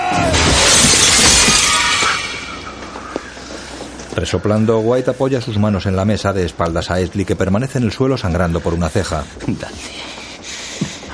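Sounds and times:
window glass shattering from a thrown chair: 0.0 - 3.2
speech: 4.2 - 10.2.

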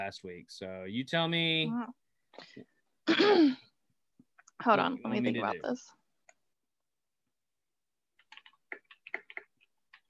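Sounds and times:
speech: 0.0 - 3.7, 4.6 - 6.0
typing on a keyboard: 8.2 - 10.0.

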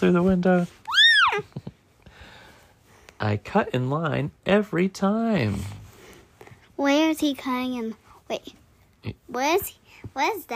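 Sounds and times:
speech: 0.0 - 0.8, 3.2 - 5.8, 6.8 - 10.5
child meowing like a cat: 0.9 - 1.4.

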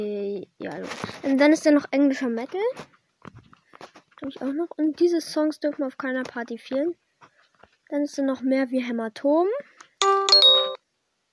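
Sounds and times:
speech: 0.0 - 3.0, 4.2 - 7.0, 7.9 - 10.2
electronic phone message notification chime: 10.0 - 10.8.

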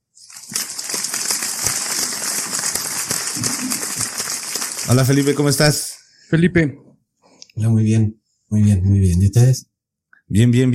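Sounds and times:
crowd applause: 0.3 - 5.8
speech: 4.9 - 6.9, 7.6 - 9.7, 10.3 - 10.7.

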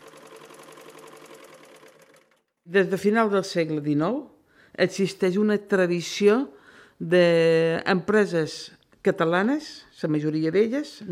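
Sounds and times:
old sewing machine running: 0.0 - 2.5
speech: 2.7 - 11.1.

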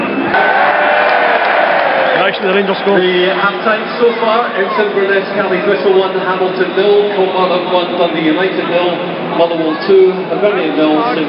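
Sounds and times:
large stadium crowd booing the referee at a football match: 0.0 - 7.6
speech: 2.4 - 11.2.

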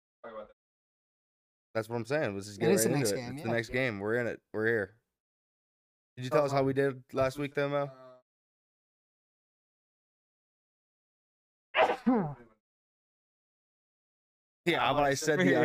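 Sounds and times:
speech: 1.8 - 5.0, 6.2 - 8.0, 14.6 - 15.6
person sneezing: 11.8 - 12.2.

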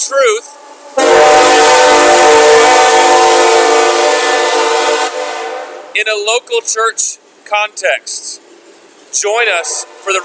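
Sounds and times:
speech: 0.0 - 1.1, 6.0 - 8.5, 9.1 - 10.2
rumble of passing train: 0.0 - 10.2
train horn blaring in a chord-like blast: 0.5 - 5.9, 9.5 - 10.2.

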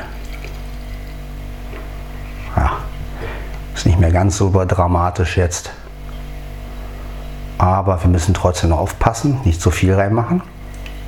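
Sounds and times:
tea pouring from a kettle: 0.0 - 1.7
low constant hum: 0.0 - 11.0
speech: 3.8 - 5.8, 7.8 - 10.5.

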